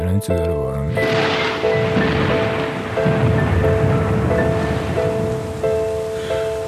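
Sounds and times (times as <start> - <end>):
speech: 0.2 - 1.5
steady dense rainfall: 0.9 - 6.6.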